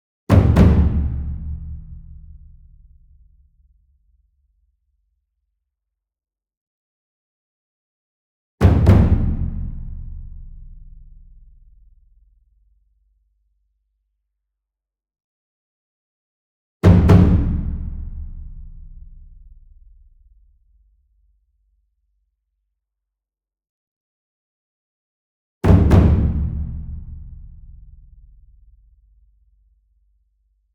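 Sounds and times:
medium ensemble Taiko double drum: 0.3 - 3.2, 8.6 - 11.4, 16.8 - 19.7, 25.6 - 28.3.

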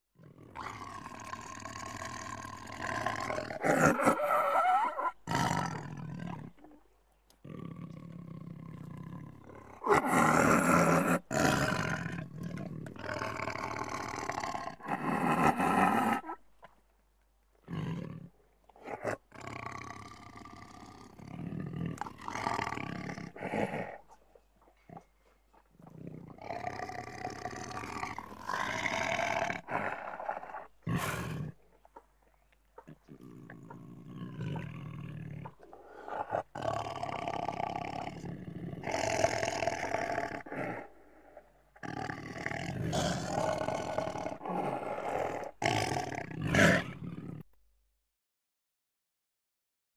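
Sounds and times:
tiger growling: 0.2 - 16.4, 17.6 - 47.4.

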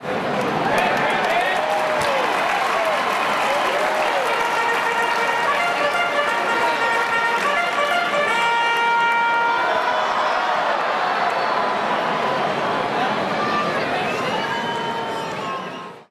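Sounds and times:
baseball crowd reacting: 0.0 - 16.0
baseball stadium organ music: 4.3 - 9.5.

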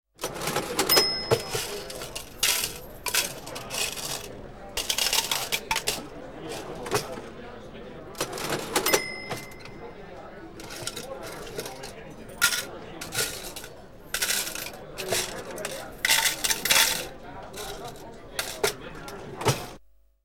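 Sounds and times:
cash register: 0.2 - 19.8
restaurant background noise: 0.2 - 19.8.

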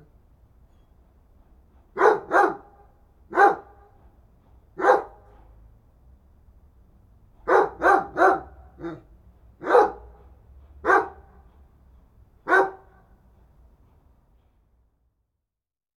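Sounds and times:
dog barking: 2.0 - 4.0, 4.8 - 5.3, 7.4 - 10.2, 10.8 - 11.4, 12.4 - 13.0.

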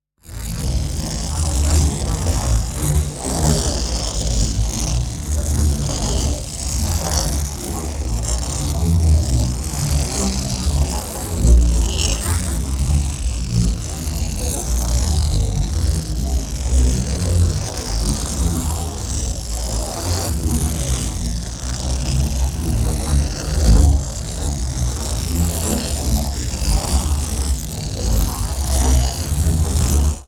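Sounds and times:
large marbles rolling slowly in a pipe: 0.6 - 30.2.

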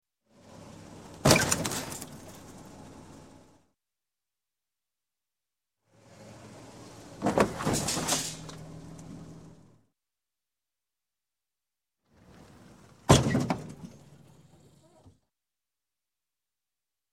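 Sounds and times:
small car fender bender crash: 1.1 - 3.6, 6.1 - 9.7, 12.2 - 15.2.

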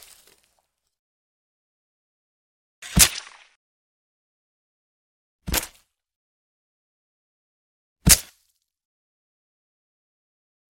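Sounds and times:
sword stab: 2.9 - 3.6, 8.1 - 8.3.

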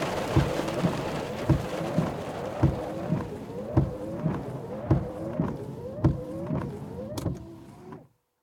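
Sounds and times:
rain: 0.0 - 5.5.

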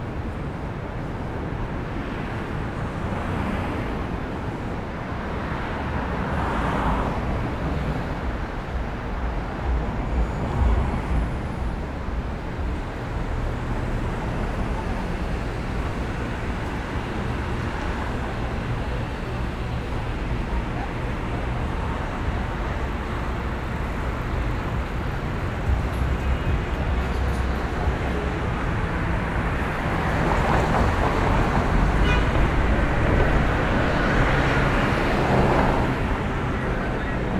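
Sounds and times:
urban daytime traffic: 0.0 - 37.3.

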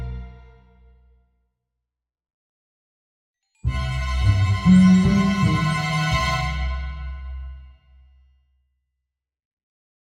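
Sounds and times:
negative orchestral jingle: 3.7 - 7.1.

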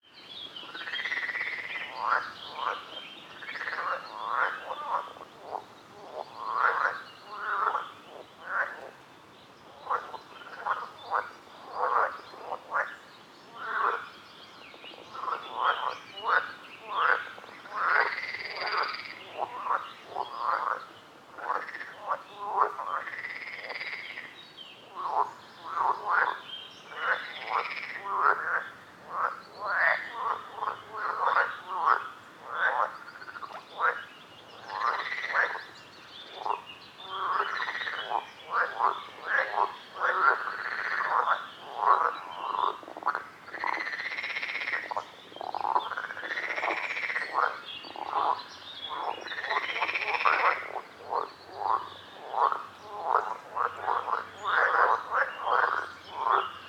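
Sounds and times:
frogs at a lake: 0.6 - 9.0, 9.7 - 56.6.

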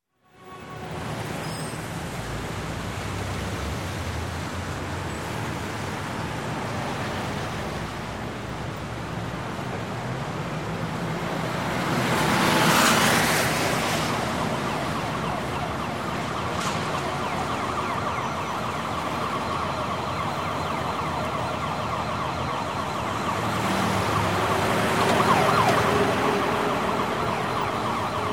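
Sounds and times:
medium traffic: 0.2 - 28.3
siren passing by: 11.3 - 28.3.

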